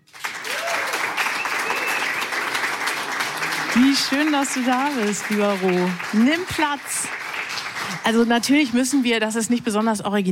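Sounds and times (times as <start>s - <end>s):
large audience applauding enthusiastically: 0.0s - 9.3s
faint whistles and cheers from the audience: 0.3s - 3.8s
speech: 3.8s - 7.2s, 8.0s - 10.3s.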